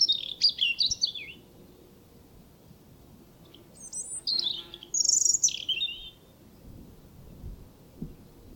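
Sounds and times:
European robin Erithacus rubecula singing: 0:00.0 - 0:01.9, 0:03.4 - 0:07.5.

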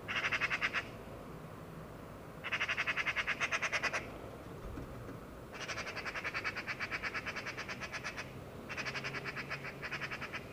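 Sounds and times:
Eurasian magpie Pica pica chattering: 0:00.1 - 0:00.9, 0:02.5 - 0:04.1, 0:05.5 - 0:10.5.

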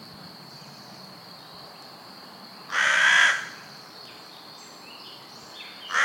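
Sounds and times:
Carrion crow cawing: 0:02.7 - 0:03.6, 0:05.9 - 0:06.0.

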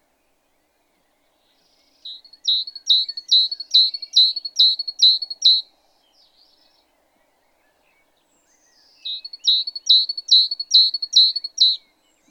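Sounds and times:
great tit Parus major repeating bright high chirps: 0:02.0 - 0:05.6, 0:08.6 - 0:11.8.

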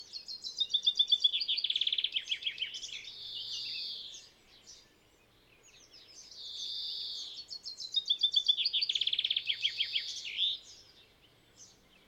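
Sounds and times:
common chaffinch song: 0:00.0 - 0:12.0.

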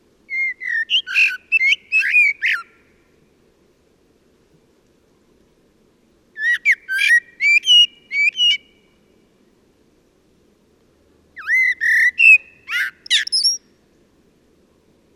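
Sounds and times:
common blackbird Turdus merula singing: 0:00.3 - 0:02.8, 0:06.4 - 0:08.9, 0:11.4 - 0:13.6.

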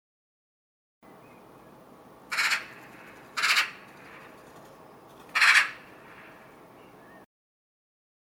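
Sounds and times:
Eurasian magpie Pica pica rasping chack calls: 0:02.3 - 0:04.3, 0:05.3 - 0:06.4.

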